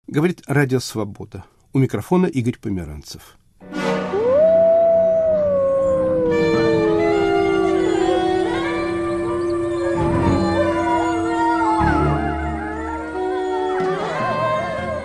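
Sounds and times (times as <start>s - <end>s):
speech: 0.1s - 3.8s
several wolves howling together: 4.1s - 15.0s.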